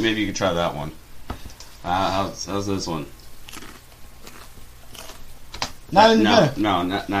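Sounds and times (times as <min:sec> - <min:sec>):
speech: 0:00.0 - 0:01.0, 0:01.8 - 0:03.6, 0:05.9 - 0:07.1
crunchy bite into an apple: 0:03.4 - 0:05.3.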